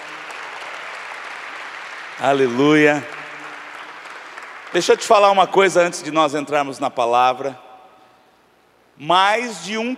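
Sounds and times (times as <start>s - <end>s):
congregation applauding: 0.0s - 5.8s
speech: 2.2s - 3.2s, 4.7s - 7.6s, 9.0s - 9.9s.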